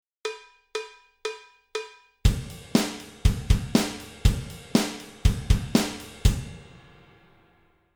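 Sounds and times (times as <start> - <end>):
kihon ride cymbal on drum kit: 2.3 - 7.1.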